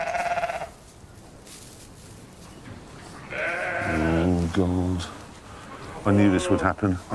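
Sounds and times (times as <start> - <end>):
sheep bleating while giving birth: 0.0 - 0.8, 3.3 - 4.4, 5.9 - 6.8
faint noise: 0.0 - 7.1
speech: 4.6 - 5.2, 6.0 - 7.1.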